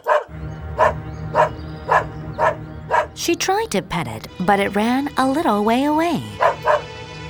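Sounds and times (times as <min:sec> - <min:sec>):
dog barking: 0:00.0 - 0:03.1, 0:06.4 - 0:06.9
speech: 0:03.2 - 0:06.8.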